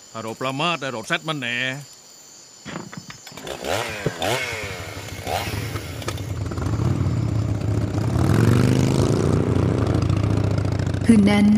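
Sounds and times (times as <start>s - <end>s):
speech: 0.1s - 2.0s, 11.1s - 11.5s
motorcycle ridden out on patrol at night: 2.7s - 11.5s.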